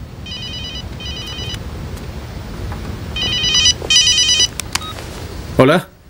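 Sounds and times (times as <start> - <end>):
low steady hum: 0.0 - 6.0
telephone ringing with warbling electronic trills at a police department: 0.2 - 1.6, 3.2 - 5.0
speech: 5.6 - 6.0.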